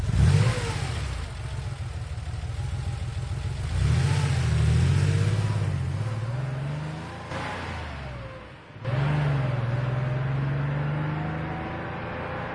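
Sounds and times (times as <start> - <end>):
truck engine driving away on a mountain valley road at night: 0.0 - 12.5.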